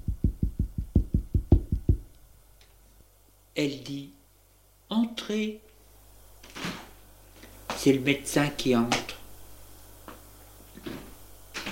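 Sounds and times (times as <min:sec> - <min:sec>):
dull knocks on a wooden bedroom door: 0:00.0 - 0:02.1
speech: 0:03.6 - 0:04.2, 0:04.9 - 0:05.6, 0:07.8 - 0:09.2.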